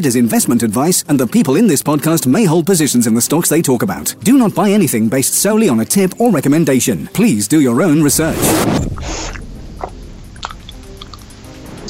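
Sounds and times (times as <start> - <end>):
speech: 0.0 - 9.4
person chewing food noisily: 8.9 - 11.2.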